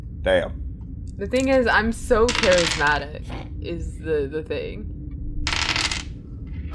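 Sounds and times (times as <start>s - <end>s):
low room hum: 0.0s - 6.7s
speech: 0.2s - 5.0s
dice rolling on a table: 2.3s - 3.0s, 5.5s - 6.1s.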